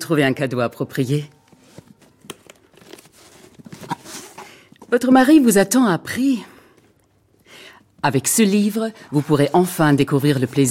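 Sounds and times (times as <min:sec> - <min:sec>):
speech: 0:00.1 - 0:01.4, 0:04.9 - 0:06.5, 0:08.0 - 0:10.6
cardboard moving boxes being unpacked in a video game, tearing and crinkling: 0:02.7 - 0:04.4.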